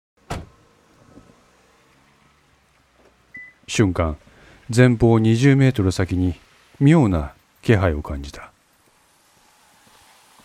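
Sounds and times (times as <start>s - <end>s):
car door shutting in a parking lot: 0.2s - 1.5s
speech: 3.7s - 8.5s.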